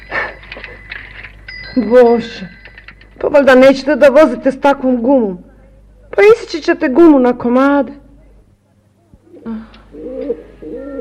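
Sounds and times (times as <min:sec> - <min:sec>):
faint steady hum: 0:00.0 - 0:10.9
speech: 0:01.8 - 0:02.6, 0:03.2 - 0:05.5, 0:06.1 - 0:08.0
doves or pigeons cooing in the woods: 0:09.2 - 0:10.9.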